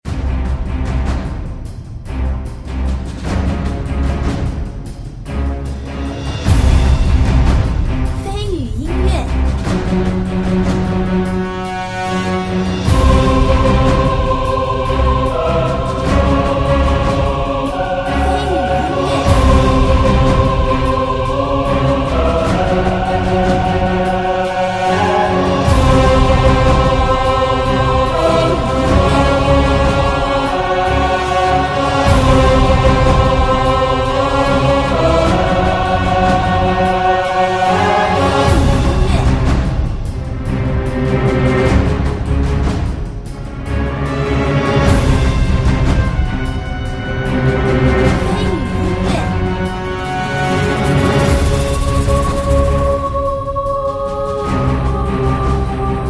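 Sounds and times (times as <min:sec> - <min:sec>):
tense dangerous boss battle music: 0:00.1 - 0:56.0.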